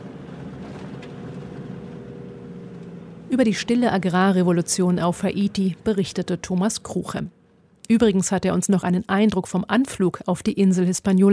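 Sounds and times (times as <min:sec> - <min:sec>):
car driving along a road: 0:00.0 - 0:07.8
speech: 0:03.3 - 0:11.3.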